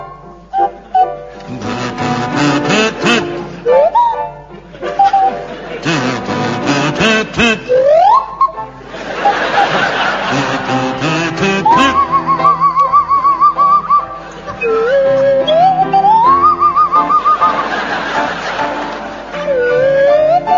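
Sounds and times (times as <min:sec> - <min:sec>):
swanee whistle playing a waltz tune: 0:00.0 - 0:20.5
audience laughing and chuckling: 0:00.8 - 0:20.5
buzzing kazoo playing a waltz: 0:01.5 - 0:03.8, 0:05.8 - 0:08.0, 0:10.2 - 0:13.3.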